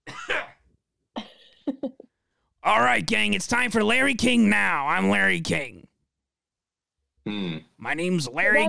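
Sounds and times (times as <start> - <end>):
person clearing throat: 0.0 - 0.6, 7.3 - 7.8
person coughing: 0.0 - 0.6
speech: 2.7 - 5.8, 7.3 - 8.6.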